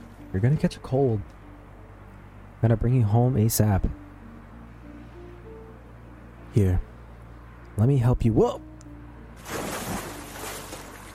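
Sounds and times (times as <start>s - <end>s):
speech: 0.3s - 1.4s, 2.6s - 4.0s, 6.6s - 6.9s, 7.8s - 8.7s
splash as a person is pulled into the water: 9.4s - 11.1s.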